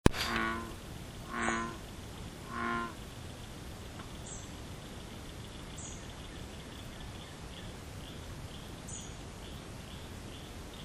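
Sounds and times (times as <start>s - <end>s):
steady background hiss: 0.0s - 10.8s
bullfrog croaking at a pond: 0.1s - 3.0s.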